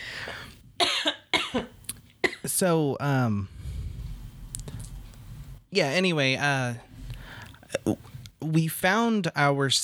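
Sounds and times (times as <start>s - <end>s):
person coughing harshly: 0.3s - 2.5s
speech: 2.6s - 3.6s, 5.7s - 6.9s, 7.9s - 9.8s.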